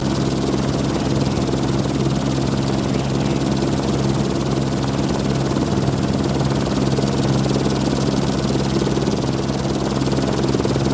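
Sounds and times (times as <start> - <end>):
helicopter idling: 0.0 - 10.9.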